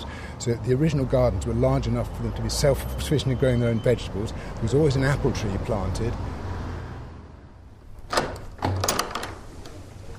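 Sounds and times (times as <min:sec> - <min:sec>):
speech: 0:00.4 - 0:06.4
old wooden double arch doors creaking and knocking: 0:07.8 - 0:10.1.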